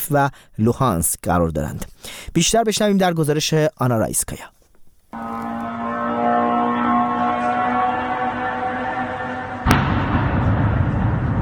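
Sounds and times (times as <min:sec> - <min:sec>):
speech: 0:00.1 - 0:05.4
suicide drone engine whine: 0:05.2 - 0:11.3
explosion: 0:09.6 - 0:11.3
lingering rumbling noise: 0:09.6 - 0:11.3.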